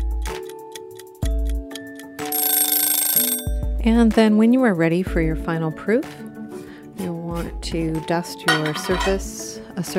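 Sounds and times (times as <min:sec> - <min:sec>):
kitchen timer ringing with electronic tones and buzzing alarm: 0:01.8 - 0:03.8
speech: 0:03.8 - 0:06.2, 0:07.0 - 0:09.9.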